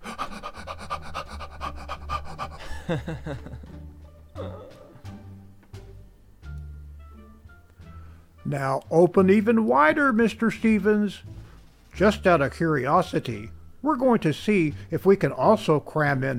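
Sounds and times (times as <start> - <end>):
voice imitating a dog panting: 0.0 - 3.5
music: 0.0 - 16.3
laughter: 2.3 - 4.9
speech: 2.9 - 3.7, 8.5 - 11.4, 12.0 - 16.3.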